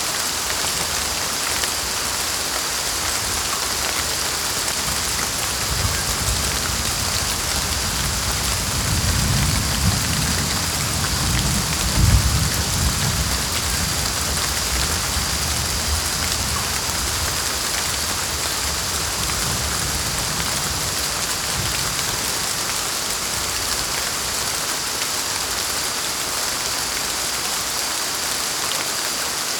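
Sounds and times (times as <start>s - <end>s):
steady dense rain hissing in a tropical storm: 0.0s - 29.5s.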